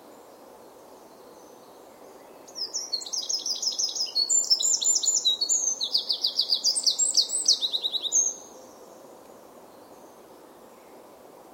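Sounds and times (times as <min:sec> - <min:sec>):
soft steady noise: 0:00.0 - 0:11.5
Eurasian wren Troglodytes troglodytes singing: 0:02.5 - 0:08.5.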